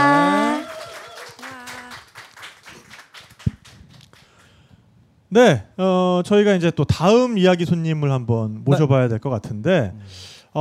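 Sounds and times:
studio audience applause: 0.0 - 4.4
speech: 5.3 - 10.5.

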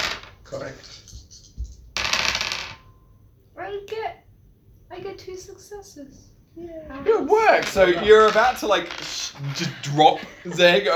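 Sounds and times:
dice rolling on a hard table: 0.0 - 2.9, 7.5 - 10.1
speech: 0.5 - 1.2, 5.0 - 10.9
laughter: 7.3 - 10.9.

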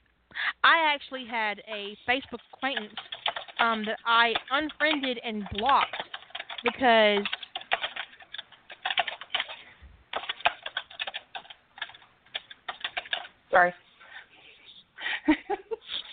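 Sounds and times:
speech: 0.8 - 6.0, 6.6 - 7.4, 13.6 - 13.8
loud typing on a computer keyboard: 2.3 - 13.4.

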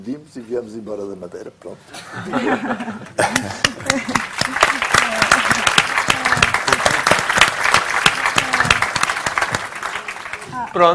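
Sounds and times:
speech: 0.0 - 4.6, 10.8 - 10.9
laughter: 2.0 - 7.3
audience applause, crowd clapping enthusiastically: 3.3 - 10.9.

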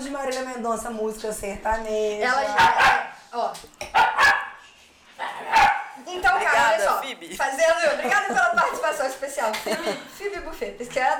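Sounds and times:
speech: 0.2 - 3.8, 6.1 - 11.1
dog barking: 2.4 - 3.2, 3.8 - 4.6, 5.2 - 6.0.

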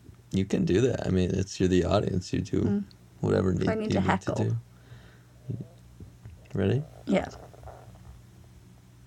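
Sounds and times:
speech: 0.3 - 4.7, 5.5 - 5.7, 6.5 - 7.4
low gurgling stomach rumble: 5.4 - 8.2.

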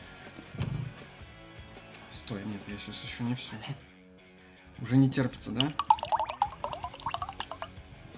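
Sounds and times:
speech: 2.3 - 3.9, 4.8 - 5.9
tropical banana smoothie sour ale poured from a bottle into a glass: 5.5 - 7.8.

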